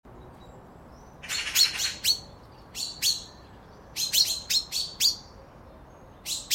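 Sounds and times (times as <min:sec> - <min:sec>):
common chaffinch Fringilla coelebs metallic call notes: 0:01.2 - 0:05.3, 0:06.2 - 0:06.5.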